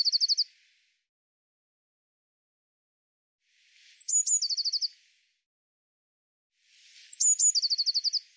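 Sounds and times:
Eurasian blue tit calling with high thin notes and a lower trill: 0.0 - 0.4, 3.9 - 4.9, 7.0 - 8.2.

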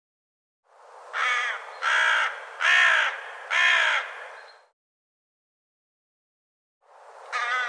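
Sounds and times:
bird cawing: 1.1 - 4.7, 7.3 - 7.6.

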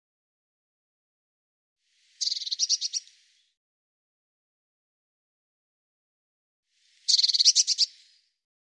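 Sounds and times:
Eurasian blue tit giving churring buzzy call bursts: 2.2 - 3.1, 7.1 - 7.9.

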